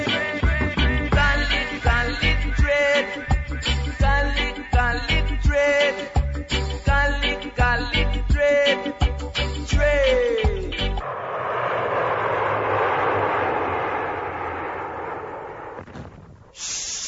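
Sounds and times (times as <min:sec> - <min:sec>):
brief burst of music: 0:00.0 - 0:11.0
airplane engine roar flying overhead: 0:11.0 - 0:16.4.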